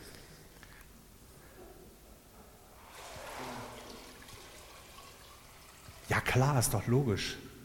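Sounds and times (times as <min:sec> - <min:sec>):
water being poured and trickling: 0:02.8 - 0:06.6
speech: 0:06.3 - 0:07.5.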